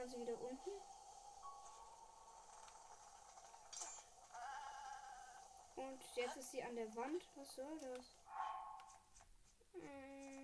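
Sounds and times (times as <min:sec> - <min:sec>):
speech: 0:00.0 - 0:01.0, 0:05.8 - 0:08.2, 0:09.8 - 0:10.4
steady low hiss: 0:00.0 - 0:10.4
goat bleating: 0:04.3 - 0:05.4.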